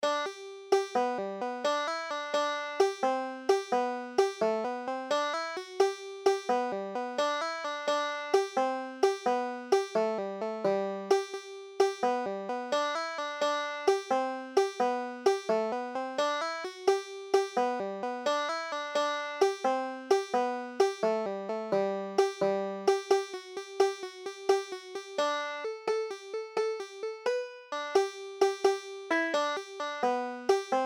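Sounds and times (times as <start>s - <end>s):
banjo: 0.0s - 30.8s.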